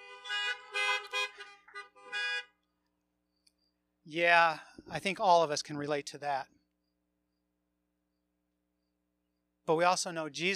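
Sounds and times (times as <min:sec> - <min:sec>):
car horns honking: 0:00.0 - 0:02.7
speech: 0:04.1 - 0:06.6, 0:09.7 - 0:10.5.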